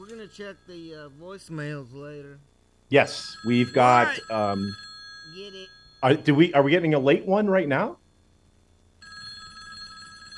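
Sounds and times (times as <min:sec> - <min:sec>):
speech: 0:00.2 - 0:08.0
telephone bell ringing: 0:03.1 - 0:06.6, 0:09.0 - 0:10.3.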